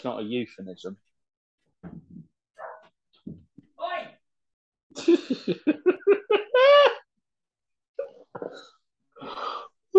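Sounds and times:
speech: 0.0s - 1.1s, 5.0s - 6.2s
dog barking: 2.6s - 2.9s
faint high dog yip: 2.6s - 2.9s.

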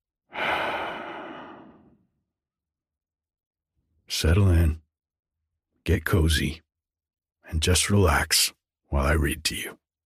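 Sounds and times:
long soft exhale of a deep breath: 0.3s - 2.0s
speech: 4.1s - 4.8s, 5.8s - 6.6s, 7.5s - 9.8s.

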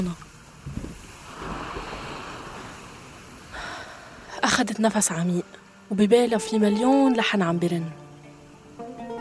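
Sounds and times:
speech: 0.0s - 0.3s, 4.6s - 8.0s
sea waves crashing against rocks: 0.0s - 4.3s.

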